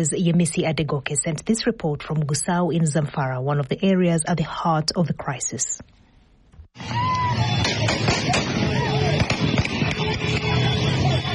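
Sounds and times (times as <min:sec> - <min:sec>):
speech: 0:00.0 - 0:06.0, 0:06.8 - 0:08.0
people screaming and shouting: 0:06.8 - 0:11.3
gunshots as gunmen on motorbikes ride into a village in northwest Nigeria: 0:07.5 - 0:10.9.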